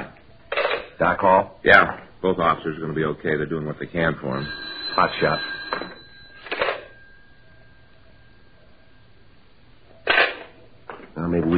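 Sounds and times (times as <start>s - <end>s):
speech: 1.0s - 6.0s
faint steady tone: 2.2s - 11.5s
telephone ringing over a phone line: 3.8s - 10.7s.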